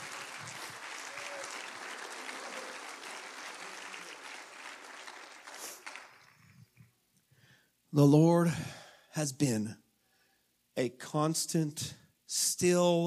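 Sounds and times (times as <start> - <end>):
audience clapping in sustained applause: 0.0 - 6.9
speech: 7.9 - 9.8, 10.8 - 13.0.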